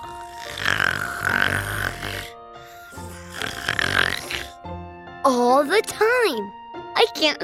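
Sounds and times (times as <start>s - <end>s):
loud rattling snoring: 0.0s - 4.7s
speech: 5.3s - 7.4s.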